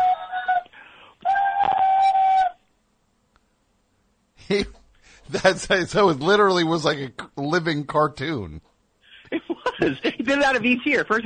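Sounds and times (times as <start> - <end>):
man's voice imitating a shrill steam whistle: 0.0 - 0.4, 1.2 - 2.6
speech: 5.4 - 8.7, 9.8 - 11.2
laughter: 9.2 - 10.5.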